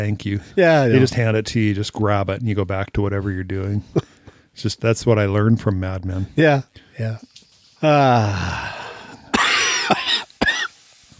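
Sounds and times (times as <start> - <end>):
speech: 0.0 - 8.8
person coughing: 9.3 - 10.7.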